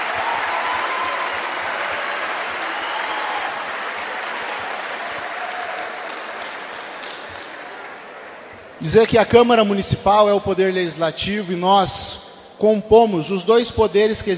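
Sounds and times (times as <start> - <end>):
sizable crowd applauding: 0.0 - 8.9
speech: 8.8 - 14.3.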